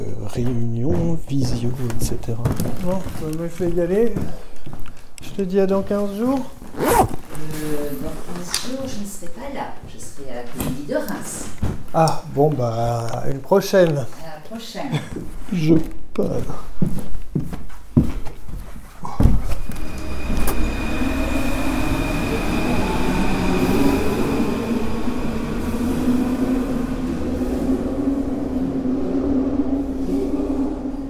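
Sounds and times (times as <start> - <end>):
speech: 0.3 - 4.5, 5.4 - 16.9
underground metro train rumbling through a tunnel: 19.4 - 31.0
underground metro train clanks: 19.5 - 28.4
metro train wheel whine: 19.5 - 31.0.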